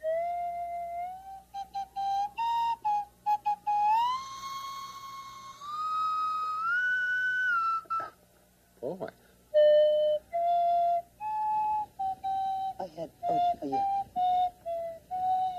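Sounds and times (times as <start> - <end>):
slide whistle blown: 0.0 - 8.2, 9.5 - 15.5.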